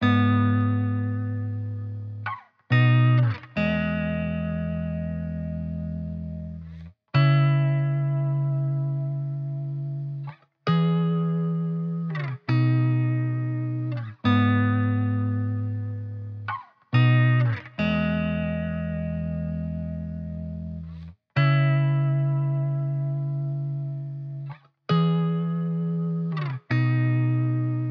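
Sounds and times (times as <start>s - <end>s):
main guitar loop in G sharp minor: 0.0s - 27.9s.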